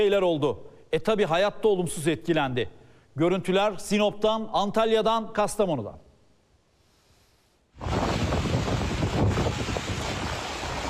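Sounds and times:
speech: 0.0 - 6.0
storm wind roaring with gusty buffeting in a sudden autumn storm: 7.8 - 10.8.

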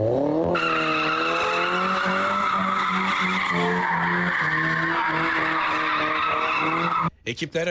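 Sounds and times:
tire squeal from cars drifting in Ankara: 0.4 - 7.1.

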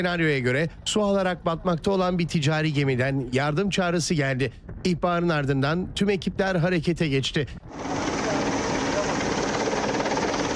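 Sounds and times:
speech: 0.0 - 8.1
helicopter rotor and engine roar during a sea search-and-rescue drill: 7.7 - 10.5.

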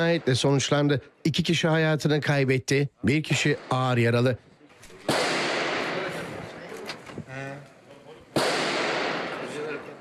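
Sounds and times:
speech: 0.0 - 4.5
gunshots in camera footage: 3.3 - 4.4, 5.0 - 6.6, 8.3 - 9.9.

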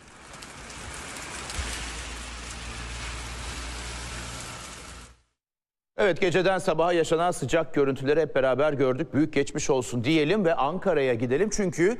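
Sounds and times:
heavy downpour of rain in Istanbul: 0.0 - 5.4
speech: 6.0 - 11.9.

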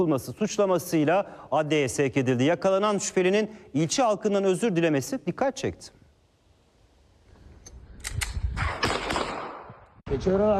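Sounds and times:
speech: 0.0 - 6.0, 10.1 - 10.5
gunshots from a gun fired into the air in a street: 8.2 - 10.0.

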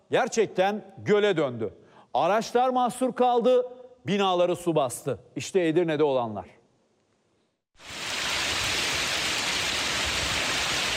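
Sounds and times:
speech: 0.1 - 6.6, 7.8 - 8.0
heavy rain and hail pounding down in Edirne Turkey: 7.9 - 10.9.

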